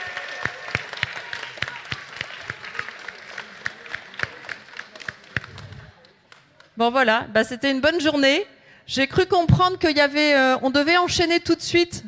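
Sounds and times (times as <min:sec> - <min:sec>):
audience applauding prize winners at a pitch competition: 0:00.0 - 0:06.4
speech: 0:06.8 - 0:12.0.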